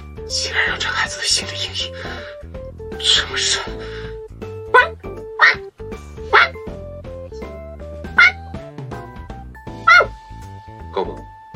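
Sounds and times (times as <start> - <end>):
sustained musical backing: 0.0 - 11.5
speech: 0.3 - 4.0
voice imitating a dog barking: 4.7 - 5.6, 6.3 - 6.6, 8.2 - 8.4, 9.9 - 10.1.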